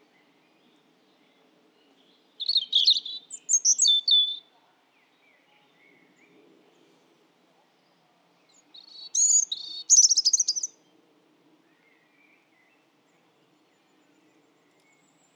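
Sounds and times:
European robin Erithacus rubecula singing: 2.4s - 4.5s, 8.6s - 10.8s.

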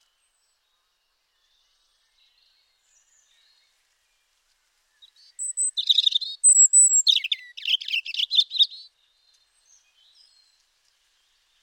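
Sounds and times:
European robin singing: 5.0s - 8.9s.

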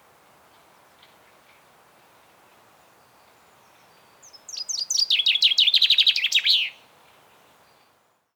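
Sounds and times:
common chaffinch Fringilla coelebs song: 3.0s - 6.8s.

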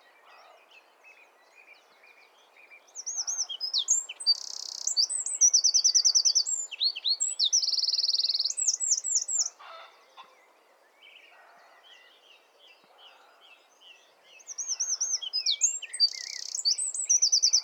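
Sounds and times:
Eurasian wren Troglodytes troglodytes singing with rattling trills: 1.2s - 9.6s, 14.4s - 17.6s.

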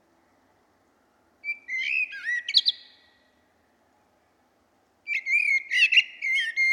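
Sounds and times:
common blackbird Turdus merula singing: 1.4s - 3.0s, 5.1s - 6.7s.

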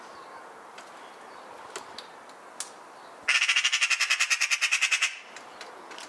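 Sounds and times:
Eurasian magpie Pica pica chattering: 3.3s - 5.3s.

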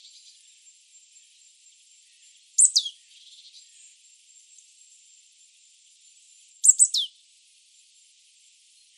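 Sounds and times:
marsh tit Poecile palustris calling: 2.6s - 2.9s, 6.6s - 7.1s.

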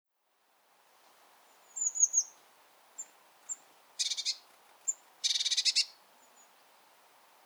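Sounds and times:
Eurasian blue tit Cyanistes caeruleus giving tseep notes and buzzy churring: 1.6s - 2.4s, 3.0s - 6.5s.

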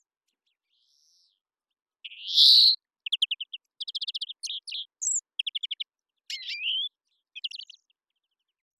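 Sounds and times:
European greenfinch Chloris chloris wheezing and trilling: 2.1s - 7.7s.

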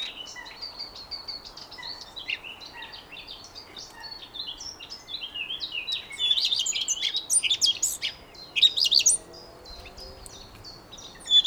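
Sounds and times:
Eurasian blackcap Sylvia atricapilla song: 3.8s - 11.4s.

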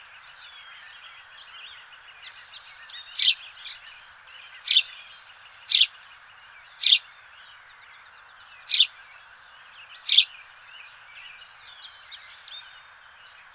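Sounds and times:
house sparrow Passer domesticus chirping: 2.0s - 6.0s, 6.6s - 7.2s, 8.2s - 10.4s
faint twittering: 8.6s - 8.9s, 10.0s - 10.3s.

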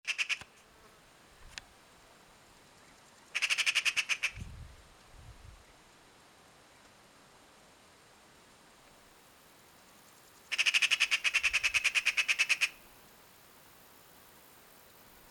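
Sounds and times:
Eurasian magpie Pica pica giving harsh machine-gun chatter: 0.1s - 0.5s, 3.4s - 4.4s, 10.5s - 12.8s.

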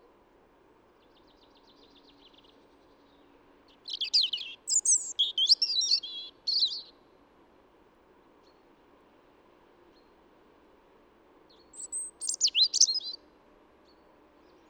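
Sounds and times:
European robin song, Erithacus rubecula: 3.8s - 6.9s, 11.7s - 13.2s.

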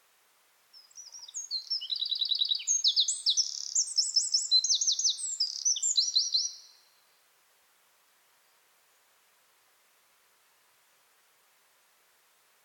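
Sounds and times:
Eurasian wren Troglodytes troglodytes singing: 0.8s - 6.8s.

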